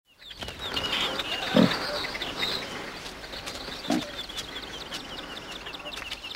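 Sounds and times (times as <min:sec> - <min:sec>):
birds chirping and trilling: 0:00.1 - 0:06.3
wild boar grunting: 0:01.1 - 0:02.8, 0:03.8 - 0:04.3.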